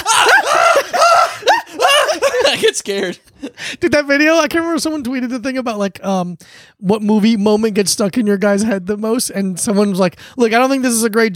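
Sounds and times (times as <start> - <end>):
person screaming in high playful shrieks: 0.0 - 2.6
laughter: 0.0 - 3.6
speech: 2.8 - 11.3.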